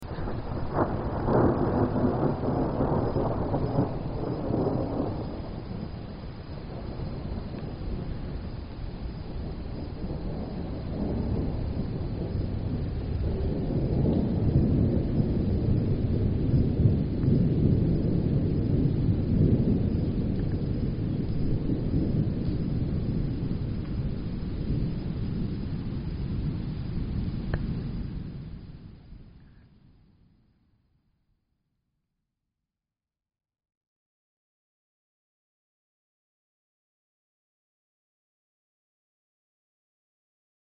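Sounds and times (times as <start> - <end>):
distant thunder: 0.0 - 29.7.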